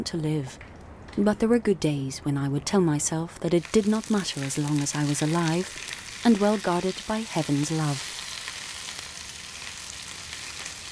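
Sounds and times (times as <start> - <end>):
speech: 0.0 - 8.2
pak choi leaves frying in a pan while being stirred: 3.5 - 10.8.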